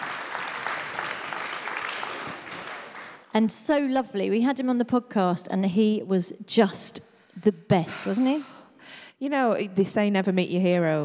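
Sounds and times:
audience applauding: 0.0 - 3.3
speech: 3.4 - 11.0.

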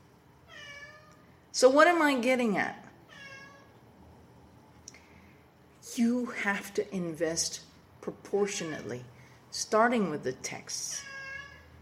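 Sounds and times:
cat meowing: 0.5 - 1.2, 3.0 - 3.7, 11.0 - 11.7
speech: 1.6 - 2.8, 6.0 - 11.1.

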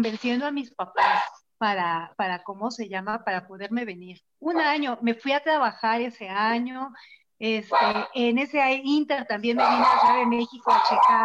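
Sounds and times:
speech: 0.0 - 11.2
dogs barking: 1.0 - 1.4, 7.7 - 8.2, 9.5 - 11.2.

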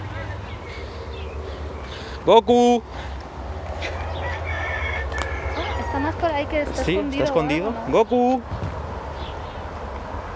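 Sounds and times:
steady low outdoor rumble: 0.0 - 10.3
speech: 2.2 - 3.0, 6.0 - 8.6
rooster crowing: 3.8 - 6.3.

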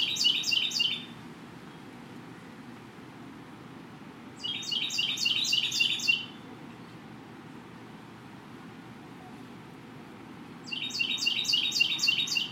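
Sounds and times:
bird chirping overhead at a pagoda: 0.0 - 1.1, 4.4 - 6.4, 10.6 - 12.5.

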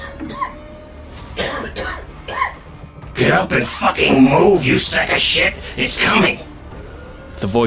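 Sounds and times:
person coughing on dust: 1.4 - 2.6
speech: 3.2 - 6.5, 7.4 - 7.6.

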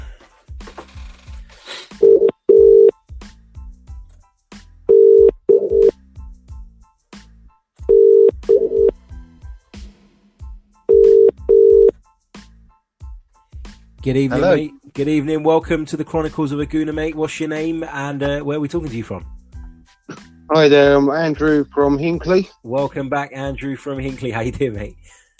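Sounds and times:
telephone call being dialed beeps: 2.0 - 2.9, 4.9 - 5.9, 7.9 - 8.9, 10.9 - 11.9
speech: 14.0 - 19.4, 20.5 - 25.3.

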